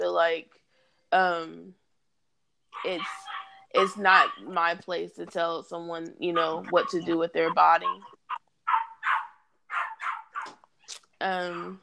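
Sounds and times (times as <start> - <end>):
speech: 0.2 - 1.8, 2.7 - 8.2, 11.2 - 11.8
dog barking: 2.8 - 4.5, 6.4 - 10.6.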